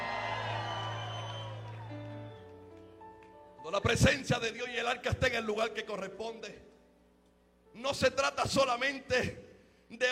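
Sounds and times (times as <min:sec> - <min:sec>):
audience shouting and cheering in praise: 0:00.0 - 0:02.4
speech: 0:03.7 - 0:06.7, 0:07.8 - 0:10.1.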